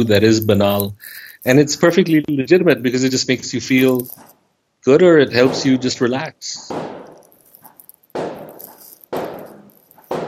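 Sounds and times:
speech: 0.0s - 7.0s
sharp gunshots with long tail: 5.3s - 6.0s.

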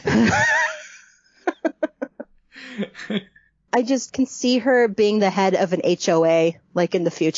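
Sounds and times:
speech: 0.0s - 0.6s, 3.0s - 7.3s
laughter: 0.0s - 3.2s
voice imitating heavy panicked breathing: 2.5s - 3.5s.

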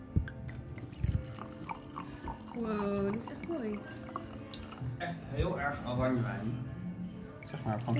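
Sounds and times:
cider pouring into a glass: 0.3s - 5.1s, 7.3s - 7.9s
speech: 2.6s - 4.0s, 4.9s - 6.7s, 7.5s - 7.9s.

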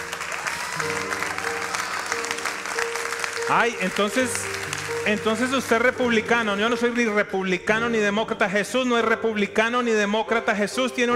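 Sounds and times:
large audience applause: 0.0s - 7.2s
speech: 3.5s - 11.1s.

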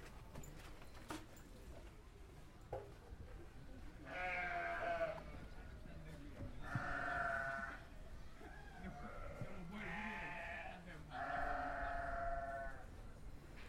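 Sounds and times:
murmuring voices: 3.3s - 12.9s
urban goats bleating: 4.1s - 5.3s, 6.6s - 7.8s, 9.2s - 12.8s.

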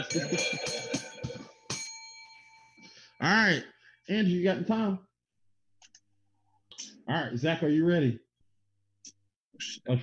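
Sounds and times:
speech: 0.0s - 1.0s, 3.2s - 5.1s, 7.1s - 8.2s, 9.0s - 10.0s
bell being struck: 0.0s - 3.2s.

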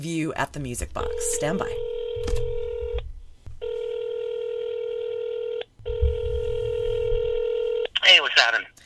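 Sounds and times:
speech: 0.0s - 2.5s, 8.4s - 8.8s
long steady electronic telephone ringing tones: 1.0s - 3.0s, 3.6s - 8.2s.

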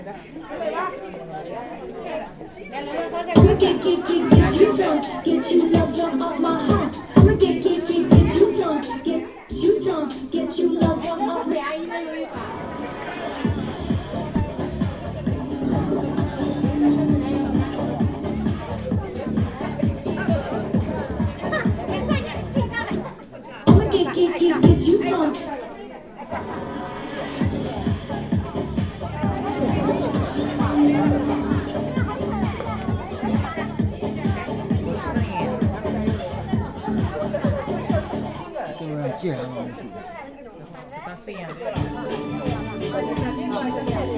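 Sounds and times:
people chattering in a village square: 0.0s - 44.1s
band playing in a village square: 3.4s - 11.6s, 15.5s - 18.7s, 23.7s - 25.5s, 28.5s - 33.8s.

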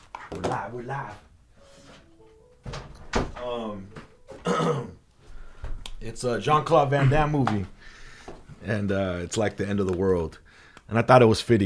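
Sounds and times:
speech: 0.4s - 1.3s, 2.7s - 4.0s, 6.0s - 8.0s, 8.6s - 11.6s
wooden door pulled shut: 2.6s - 4.5s.

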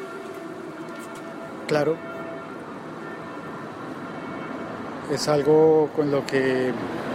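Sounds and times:
air-raid warning siren wailing: 0.0s - 5.0s
speech: 1.7s - 2.2s, 5.1s - 7.0s.

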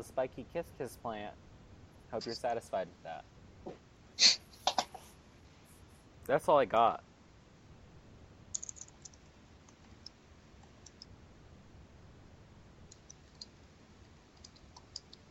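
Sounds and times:
speech: 0.0s - 1.5s, 2.1s - 4.4s, 6.3s - 7.1s
steady hiss: 0.0s - 15.2s
typing on a computer keyboard: 8.5s - 11.1s, 12.9s - 13.6s, 14.4s - 15.2s.

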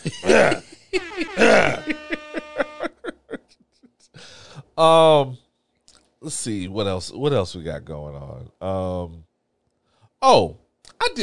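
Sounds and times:
loud raspy throat clearing: 0.0s - 0.6s, 1.4s - 1.9s
speech: 0.0s - 1.8s, 4.8s - 5.4s, 6.4s - 9.3s, 10.2s - 11.2s
short choppy voiced bursts like chuckling: 0.0s - 4.2s.

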